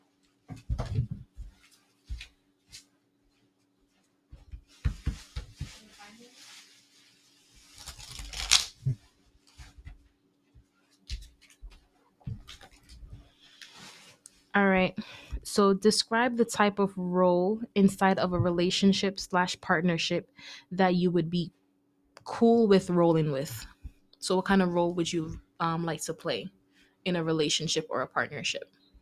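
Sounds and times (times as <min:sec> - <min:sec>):
shuffling a deck of cards: 0:07.6 - 0:09.0
speech: 0:14.6 - 0:21.6, 0:22.3 - 0:28.8.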